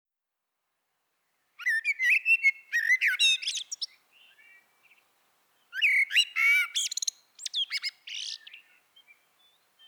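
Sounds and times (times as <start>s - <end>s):
Eurasian blackbird Turdus merula singing fluty warbles and high-pitched twittering: 1.6s - 5.0s, 5.7s - 9.8s.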